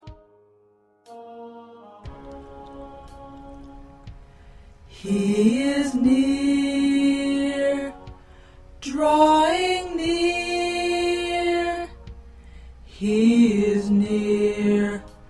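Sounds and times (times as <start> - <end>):
tenor voice of an SATB choir singing: 1.1 - 4.1, 4.9 - 8.2, 8.8 - 12.0, 12.9 - 15.2.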